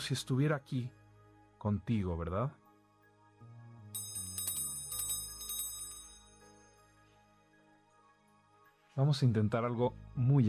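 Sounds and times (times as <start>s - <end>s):
speech: 0.0s - 1.0s, 1.6s - 2.6s, 9.0s - 10.4s
small bell ringing: 4.0s - 6.9s.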